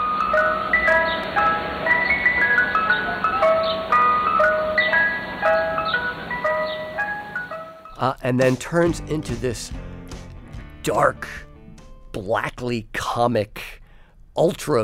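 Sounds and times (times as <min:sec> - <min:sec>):
ice cream truck chiming jingle: 0:00.0 - 0:08.1
faint street background: 0:00.0 - 0:08.5
speech: 0:08.0 - 0:09.8, 0:10.8 - 0:11.5, 0:12.2 - 0:13.8, 0:14.4 - 0:14.8.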